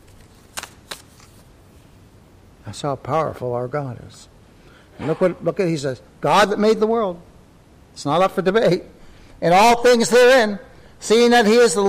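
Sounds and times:
sheet of paper rustling as it is picked up and handled: 0:00.0 - 0:01.6
speech: 0:02.6 - 0:04.3, 0:05.0 - 0:07.3, 0:08.0 - 0:11.8.

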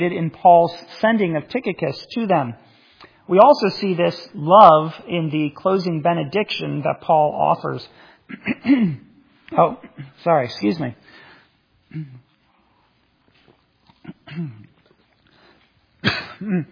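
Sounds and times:
speech: 0:00.0 - 0:02.7, 0:03.3 - 0:11.2, 0:11.9 - 0:12.2, 0:14.3 - 0:14.7, 0:16.0 - 0:16.7
speaker coughing and clearing throat to dislodge something stuck: 0:08.3 - 0:10.2, 0:11.9 - 0:12.3, 0:13.9 - 0:15.0, 0:16.0 - 0:16.7.

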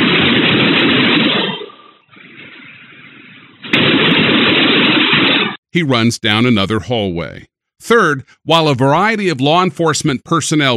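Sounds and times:
gunfire from a gunman shooting into a school classroom: 0:00.0 - 0:02.0, 0:03.6 - 0:05.6
speech: 0:05.8 - 0:10.7.

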